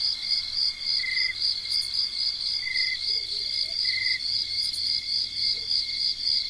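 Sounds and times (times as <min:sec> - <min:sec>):
night crickets chirping: 0:00.0 - 0:06.4.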